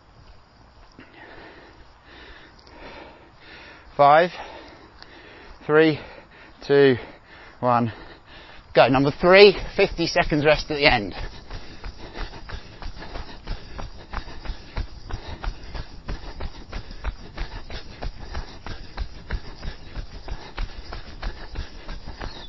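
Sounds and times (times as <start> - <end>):
speech: 4.0 - 4.5, 5.6 - 8.0, 8.8 - 11.3
horse hoofbeats on a soft muddy path: 8.8 - 22.4.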